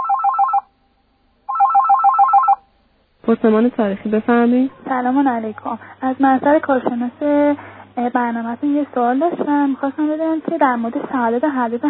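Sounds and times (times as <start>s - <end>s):
telephone ringing for incoming call: 0.0s - 0.7s, 1.5s - 2.7s
speech: 3.3s - 11.8s.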